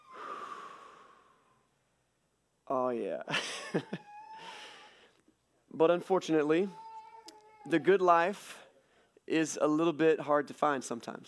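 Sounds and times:
group exhaling a slow deep breath together: 0:00.0 - 0:01.7
speech: 0:02.7 - 0:04.5, 0:05.7 - 0:06.8, 0:07.6 - 0:08.6, 0:09.3 - 0:11.2.

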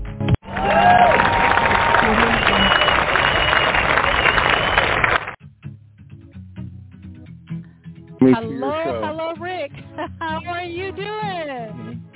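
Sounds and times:
music: 0:00.0 - 0:00.4, 0:05.4 - 0:12.1
crowd applauding and cheering: 0:00.4 - 0:05.4
speech: 0:08.3 - 0:08.7.

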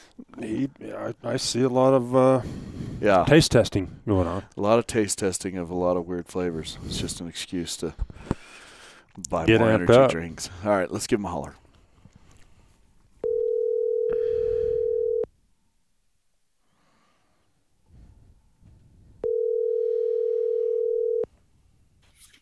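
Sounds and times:
speech: 0:00.4 - 0:08.4, 0:09.1 - 0:11.6
phone ringback tone over a phone line: 0:13.2 - 0:15.3, 0:19.2 - 0:21.3.

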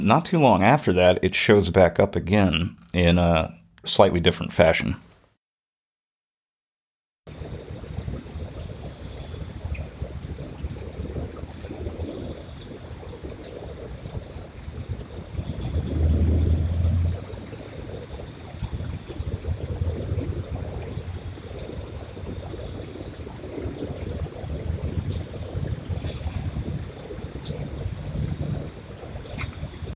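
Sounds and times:
speech: 0:00.0 - 0:05.1
muscle car engine rumbling: 0:15.4 - 0:23.0, 0:24.6 - 0:29.9.

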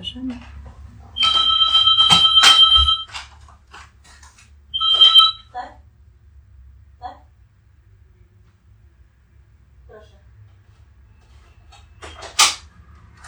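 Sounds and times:
speech: 0:00.0 - 0:00.6
intercom door buzzer: 0:01.2 - 0:03.2, 0:04.8 - 0:05.4.

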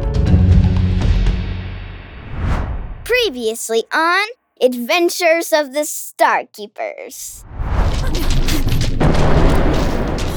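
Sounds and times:
heavy rumbling boom: 0:00.2 - 0:03.1, 0:07.4 - 0:10.3
speech: 0:03.3 - 0:07.6
loud explosion as a cannon is destroyed: 0:07.5 - 0:10.3
crackling debris: 0:07.8 - 0:10.3.

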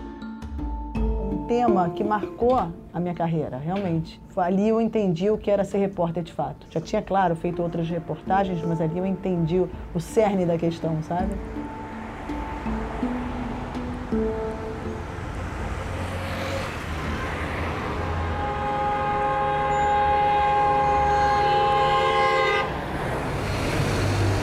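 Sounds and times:
speech: 0:01.5 - 0:11.6
busy street traffic rumbling: 0:01.6 - 0:24.4
car horns blaring: 0:16.0 - 0:23.5.

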